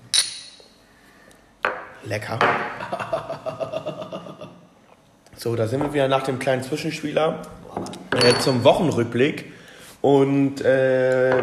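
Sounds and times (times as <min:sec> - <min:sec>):
glasses clinking in a toast: 0:00.0 - 0:00.7, 0:08.1 - 0:08.8
speech: 0:02.0 - 0:03.5, 0:05.4 - 0:11.4
laughter: 0:02.7 - 0:04.6.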